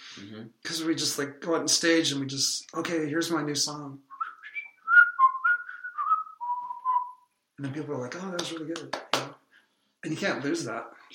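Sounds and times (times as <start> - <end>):
speech: 0.2 - 4.1, 7.6 - 9.1, 10.0 - 11.1
person whistling a tune: 4.1 - 7.2.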